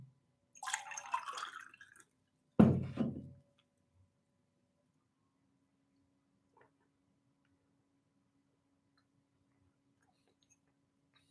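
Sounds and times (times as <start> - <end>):
water pouring into a glass: 0.6 - 2.2.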